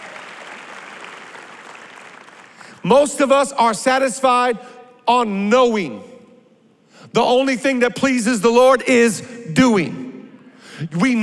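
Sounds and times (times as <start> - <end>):
audience clapping: 0.0 - 2.8
speech: 2.8 - 6.1, 7.1 - 10.0, 10.8 - 11.2.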